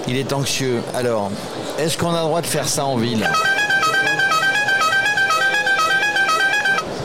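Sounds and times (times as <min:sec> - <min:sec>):
speech: 0:00.1 - 0:03.5
car horn blaring: 0:03.2 - 0:06.9.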